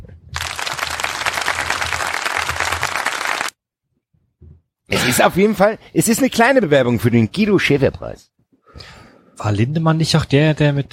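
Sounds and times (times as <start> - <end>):
crowd applause sound effect: 0.4 - 3.6
speech: 5.0 - 10.9.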